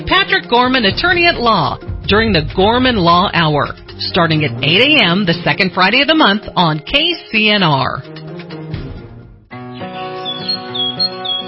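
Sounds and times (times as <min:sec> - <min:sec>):
steady musical backdrop: 0:00.0 - 0:11.4
speech: 0:00.2 - 0:08.1
birds chirping in spring: 0:09.7 - 0:11.4.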